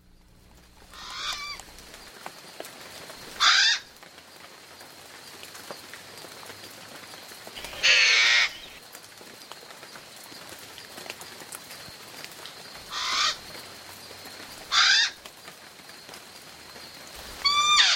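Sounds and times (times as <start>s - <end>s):
Hawaiian crow cawing: 0.9s - 1.7s, 3.4s - 3.9s, 7.6s - 8.8s, 12.9s - 13.4s, 14.7s - 15.2s, 17.4s - 17.9s.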